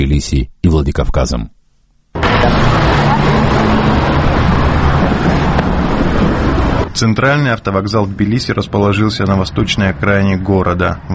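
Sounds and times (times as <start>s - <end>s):
speech: 0.0s - 1.6s, 2.2s - 3.3s, 7.0s - 11.1s
low engine drone: 2.2s - 7.0s
street traffic of passing buses and minibuses: 2.2s - 11.1s.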